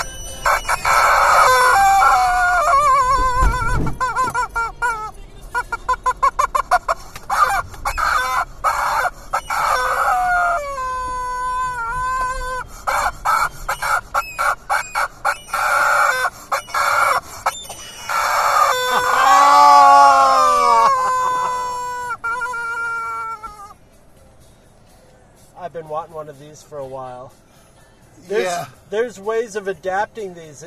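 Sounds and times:
rubber chicken toy screeching: 0:00.0 - 0:23.8
speech: 0:28.9 - 0:30.6.

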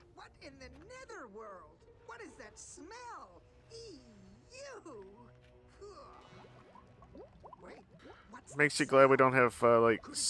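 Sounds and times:
speech: 0:00.2 - 0:06.5, 0:07.2 - 0:10.2
bubbles glugging up through river water: 0:06.4 - 0:08.2.

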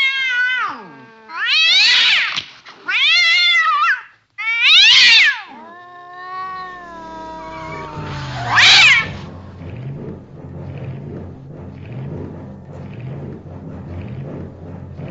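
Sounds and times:
cat meowing with drawn-out wavering yowls: 0:00.0 - 0:09.3.

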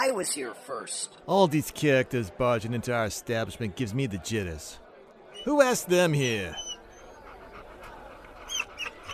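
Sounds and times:
speech: 0:00.0 - 0:04.8, 0:05.4 - 0:06.7
low murmur of noise: 0:00.0 - 0:09.1
dog whimpering in high-pitched whines: 0:06.2 - 0:09.1.

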